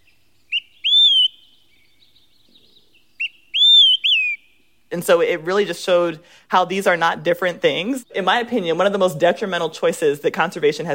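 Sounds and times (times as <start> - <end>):
birds singing clear high whistled phrases: 0.0 - 4.8
speech: 4.9 - 10.9.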